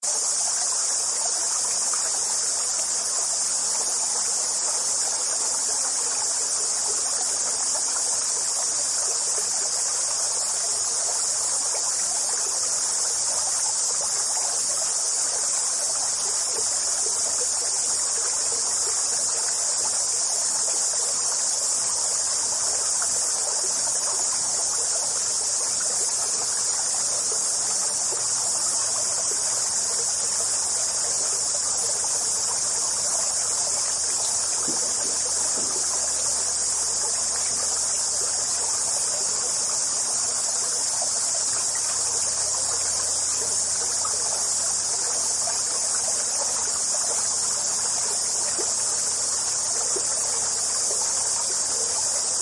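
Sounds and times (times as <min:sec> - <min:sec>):
cicadas: 0:00.0 - 0:52.4
stream flowing: 0:00.0 - 0:52.4.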